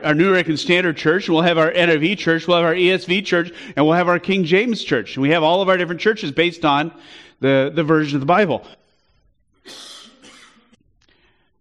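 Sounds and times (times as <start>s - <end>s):
speech: 0.0s - 8.8s, 9.6s - 9.9s
loud harsh cough: 9.6s - 10.8s.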